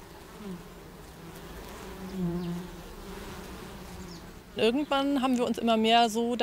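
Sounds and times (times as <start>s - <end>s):
honeybees buzzing: 0.0s - 6.4s
speech: 4.6s - 6.4s.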